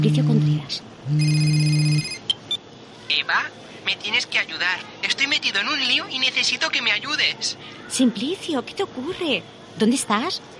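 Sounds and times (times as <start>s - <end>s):
speech: 0.0s - 2.2s, 3.3s - 10.5s
mobile phone ringtone: 1.1s - 2.4s.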